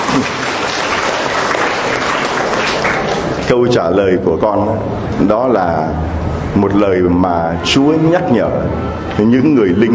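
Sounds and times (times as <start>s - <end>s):
congregation applauding: 0.0s - 3.6s
speech: 3.5s - 9.9s.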